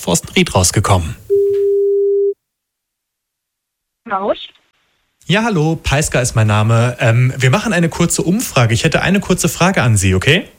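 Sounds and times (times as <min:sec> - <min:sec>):
speech: 0:00.0 - 0:01.6, 0:04.1 - 0:04.6, 0:05.3 - 0:10.5
telephone ringback tone: 0:01.3 - 0:02.4.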